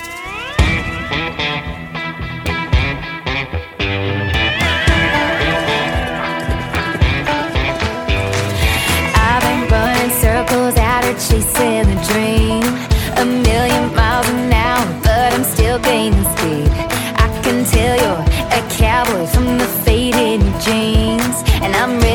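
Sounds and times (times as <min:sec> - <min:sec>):
full-band instrumental intro to a country song: 0:00.0 - 0:22.1
sustained guitar-like tones: 0:00.0 - 0:22.1
steady drum hits: 0:04.5 - 0:16.9.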